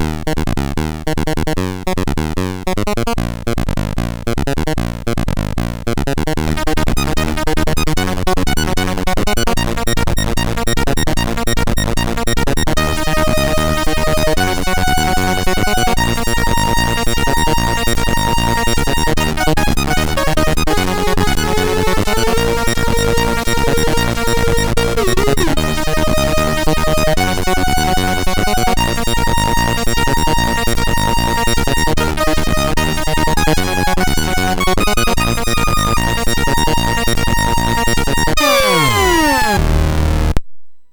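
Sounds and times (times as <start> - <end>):
new wave jazz on a sound chip: 0.0 - 40.4.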